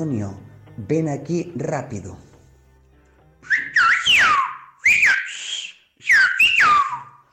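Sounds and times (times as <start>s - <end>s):
speech: 0.0s - 2.3s
whistled language phrase: 3.4s - 7.3s.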